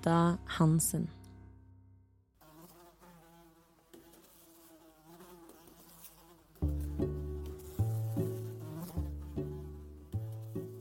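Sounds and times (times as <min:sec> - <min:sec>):
speech: 0:00.0 - 0:01.2
fly buzzing: 0:02.4 - 0:10.7.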